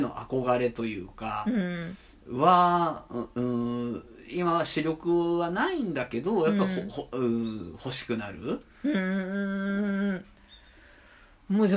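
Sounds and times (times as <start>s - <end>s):
speech: 0.0s - 10.3s, 11.5s - 11.7s
soft steady hush: 0.0s - 11.7s
faint high chirp of a distant bird outdoors: 10.1s - 10.9s.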